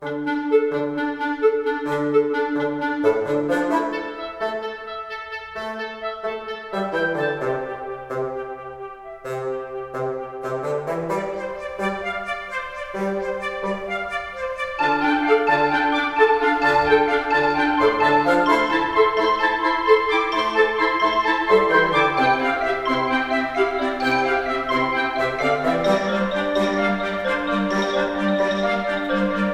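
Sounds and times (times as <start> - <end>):
woodwind: 0.0 - 29.5
xylophone: 14.7 - 29.5.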